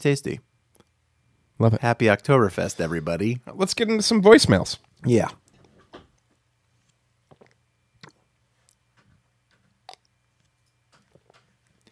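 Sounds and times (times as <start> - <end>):
speech: 0.0 - 0.5, 1.6 - 5.4
quiet munching of food: 4.8 - 11.9
sipping a drink: 7.2 - 8.9, 9.6 - 11.9
wet mouth clicks: 7.2 - 9.0, 9.6 - 11.9.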